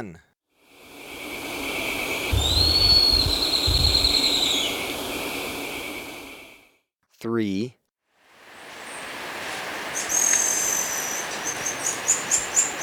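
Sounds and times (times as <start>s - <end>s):
speech: 0.0s - 0.3s, 7.2s - 7.8s
constant insect hum in Ecuador: 0.6s - 6.6s, 8.2s - 12.8s
black-streaked puffbird whistling in Ecuador: 2.3s - 4.8s, 10.0s - 12.8s
faint low rumbling: 2.3s - 6.5s.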